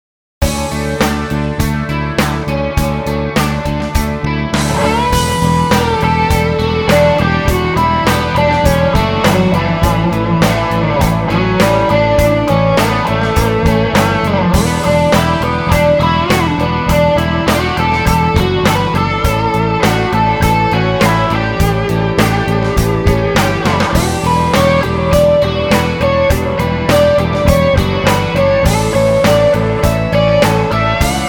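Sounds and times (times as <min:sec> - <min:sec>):
guitar through Celestion G10 Greenback 30w 2x10 speaker cabinet: 0:00.4 - 0:31.2.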